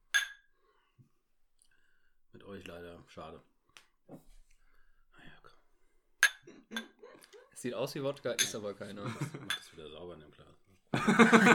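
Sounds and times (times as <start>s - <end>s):
glasses clinking in a toast: 0.1s - 0.5s, 6.2s - 7.2s, 8.3s - 9.7s
speech: 2.5s - 3.5s, 4.1s - 4.4s, 7.6s - 11.5s
laughter: 6.5s - 7.7s, 8.8s - 9.6s, 10.9s - 11.5s.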